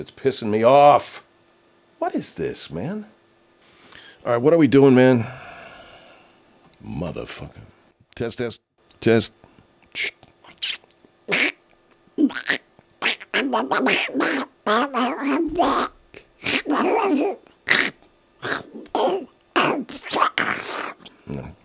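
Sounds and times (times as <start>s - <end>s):
speech: 0.0s - 1.3s, 2.0s - 3.2s, 4.2s - 5.4s, 6.8s - 9.4s, 10.0s - 10.7s, 13.5s - 17.5s, 19.0s - 20.2s
man imitating a cartoon duck quacking: 10.0s - 11.6s, 12.2s - 21.6s.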